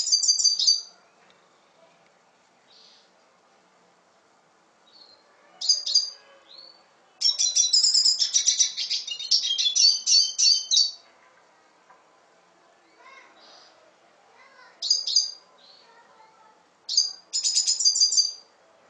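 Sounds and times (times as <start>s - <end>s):
red siskin twittering song with long buzzy trill: 0.0s - 0.9s, 4.9s - 11.1s, 14.8s - 15.8s, 16.9s - 18.5s.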